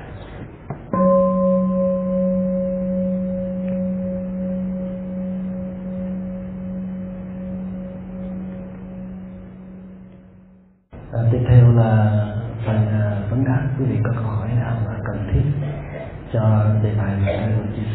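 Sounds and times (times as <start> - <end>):
faint room hum: 0.0 - 17.9
meditation bell ringing with a deep steady tone: 0.9 - 10.9
speech: 16.6 - 17.9.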